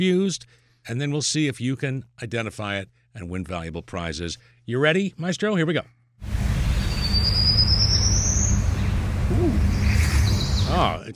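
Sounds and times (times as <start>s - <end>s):
speech: 0.0s - 6.0s, 10.7s - 11.1s
unidentified bird singing a thin high whistled note: 6.7s - 10.9s.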